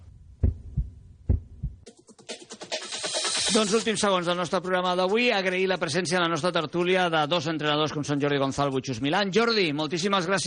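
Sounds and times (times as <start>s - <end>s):
deep thudding heartbeat pulses: 0.0s - 1.9s
speech: 3.6s - 10.4s.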